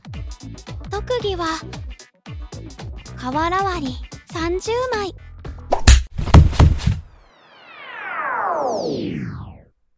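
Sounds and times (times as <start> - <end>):
speech: 0.6 - 1.8, 3.2 - 5.2
punching whacks: 5.7 - 7.0
long sliding descending whine: 7.3 - 9.7.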